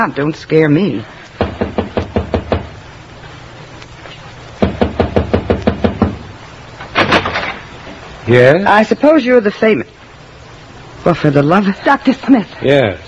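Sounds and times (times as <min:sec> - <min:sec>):
speech: 0:00.0 - 0:01.2, 0:08.3 - 0:10.0, 0:11.0 - 0:13.0
rapid firm knocking on a door: 0:01.4 - 0:02.8, 0:04.6 - 0:06.3.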